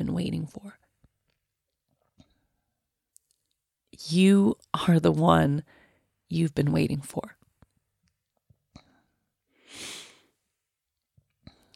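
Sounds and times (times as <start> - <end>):
speech: 0.0 - 0.9, 4.0 - 7.4
deep breath: 5.7 - 6.1, 8.8 - 10.4.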